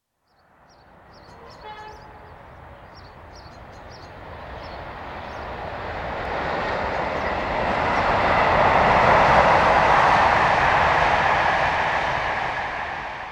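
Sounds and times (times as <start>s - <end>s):
train carrying letters rumbling along the rails: 0.4s - 13.3s.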